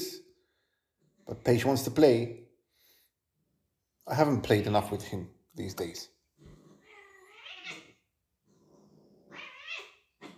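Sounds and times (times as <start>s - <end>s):
speech: 1.3s - 2.4s, 4.1s - 6.2s
cats yowling and meowing while play-fighting: 6.6s - 8.0s, 9.2s - 10.3s.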